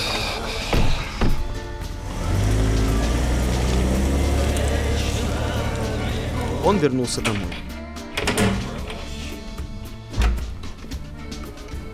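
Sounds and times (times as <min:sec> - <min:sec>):
thumps like car doors closing: 0:00.0 - 0:02.0, 0:07.2 - 0:09.1, 0:10.1 - 0:11.0
car driving away with steady low rumble: 0:00.0 - 0:06.8
car engine starting up: 0:00.0 - 0:09.6
speech: 0:06.6 - 0:07.7.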